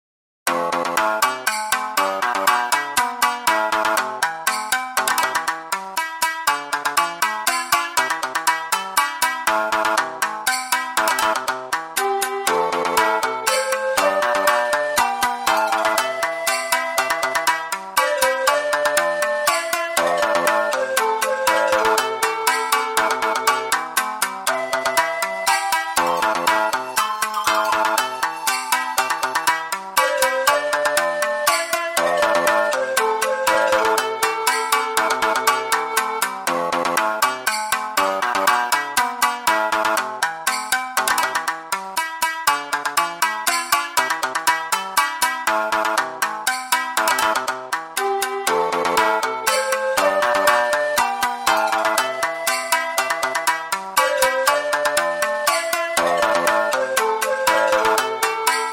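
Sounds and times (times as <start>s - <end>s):
shamisen in Japanese folk style: 0.5s - 58.7s
pan flute: 10.9s - 38.8s, 45.5s - 58.7s
shakuhachi in Japanese folk style: 12.0s - 36.5s, 48.0s - 58.7s.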